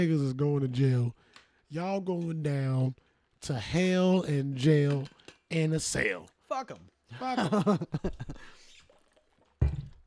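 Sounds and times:
speech: 0.0 - 8.6
water pouring: 8.2 - 10.0.

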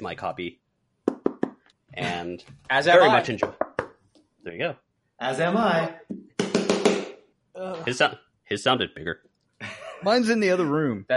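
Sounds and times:
speech: 0.0 - 0.6, 2.0 - 3.6, 4.4 - 6.2, 7.6 - 11.1
knuckles knocking on a book: 1.1 - 1.6, 6.1 - 7.2.

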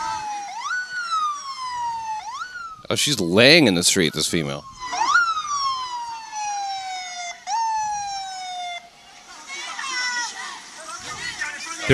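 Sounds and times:
ambulance siren wailing in descending sweeps: 0.0 - 11.9
speech: 2.9 - 4.8.

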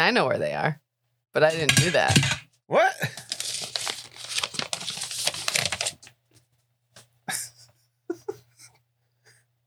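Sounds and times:
speech: 0.1 - 3.2
folded paper note from a dice box crinkling as it is opened: 1.5 - 2.4, 3.1 - 6.5.

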